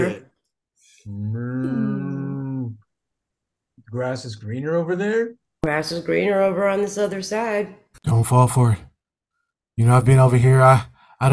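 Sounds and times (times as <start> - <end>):
speech: 0.0 - 0.2, 1.0 - 1.8, 3.9 - 8.9, 9.8 - 11.3
person mooing like a cow: 1.1 - 2.8.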